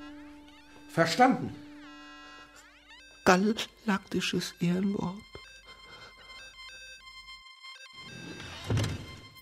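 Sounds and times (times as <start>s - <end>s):
bright electronic melody: 0.0s - 9.4s
speech: 1.0s - 1.6s, 3.3s - 5.3s
door thudding shut: 8.5s - 9.4s.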